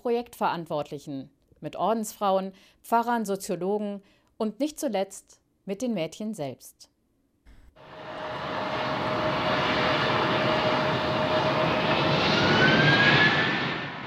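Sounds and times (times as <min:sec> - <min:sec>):
speech: 0:00.0 - 0:06.9
jet airplane roaring overhead near airport: 0:07.8 - 0:14.0.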